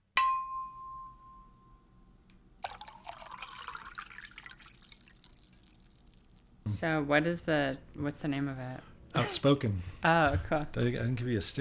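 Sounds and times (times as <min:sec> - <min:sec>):
water pouring into a glass: 0:02.6 - 0:06.6
speech: 0:06.8 - 0:11.5.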